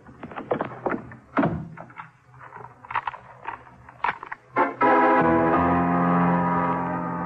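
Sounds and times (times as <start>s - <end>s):
knocks and bumps: 0.0s - 4.5s
sustained musical chord: 4.6s - 7.2s.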